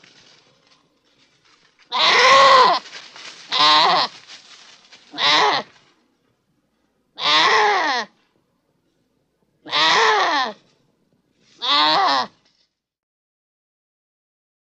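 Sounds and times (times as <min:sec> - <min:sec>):
goat bleating: 0:01.9 - 0:02.8, 0:03.5 - 0:04.2, 0:05.1 - 0:05.7, 0:07.2 - 0:08.2, 0:09.7 - 0:10.6, 0:11.6 - 0:12.4.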